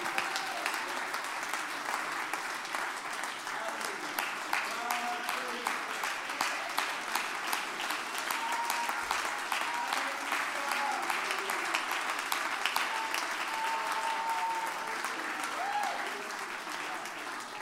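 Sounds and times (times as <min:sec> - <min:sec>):
large group clapping: 0:00.0 - 0:17.6.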